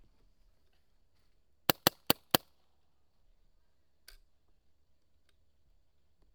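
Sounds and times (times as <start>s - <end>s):
Automag gun dry firing: 1.7s - 2.4s.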